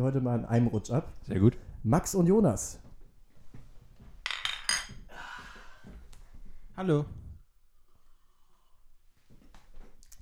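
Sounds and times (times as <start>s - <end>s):
speech: 0.0s - 2.8s, 6.8s - 7.2s
glasses clinking in a toast: 4.3s - 5.0s.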